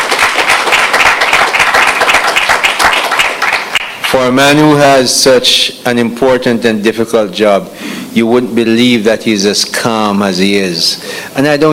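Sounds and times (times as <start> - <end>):
audience applause at a public event: 0.0 - 4.3
speech: 4.1 - 11.7.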